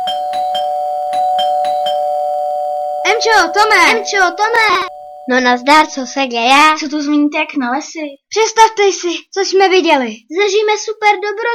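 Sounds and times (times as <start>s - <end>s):
doorbell ringing: 0.0s - 6.2s
speech: 3.2s - 11.5s.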